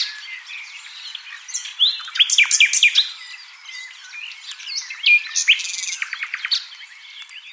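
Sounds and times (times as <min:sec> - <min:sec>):
common nightingale Luscinia megarhynchos singing: 0:00.0 - 0:07.5.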